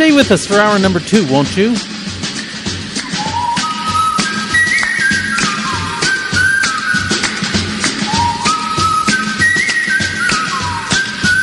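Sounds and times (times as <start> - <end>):
full busy instrumental backing music: 0.0 - 11.4
speech: 0.1 - 2.0
bright cheerful whistled melody: 2.4 - 11.4.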